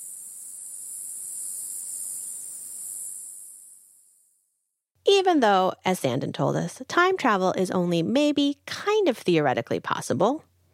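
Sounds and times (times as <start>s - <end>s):
cicadas buzzing: 0.0s - 4.4s
speech: 5.1s - 10.5s.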